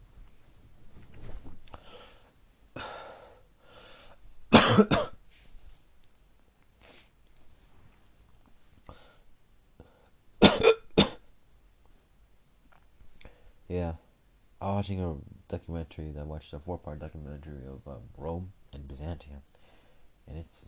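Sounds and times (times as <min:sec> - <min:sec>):
harsh coughing: 0:04.5 - 0:05.2, 0:10.4 - 0:11.3
speech: 0:04.8 - 0:05.0, 0:14.6 - 0:19.6, 0:20.3 - 0:20.6.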